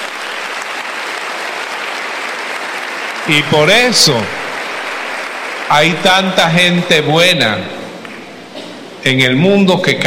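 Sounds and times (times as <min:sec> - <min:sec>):
crowd applauding: 0:00.0 - 0:07.1
speech: 0:03.3 - 0:04.4, 0:05.7 - 0:07.8, 0:09.0 - 0:10.0.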